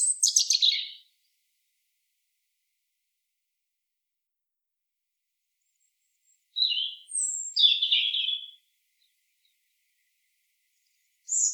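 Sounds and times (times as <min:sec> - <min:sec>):
European robin Erithacus rubecula singing: 0:00.0 - 0:01.1, 0:05.8 - 0:11.5.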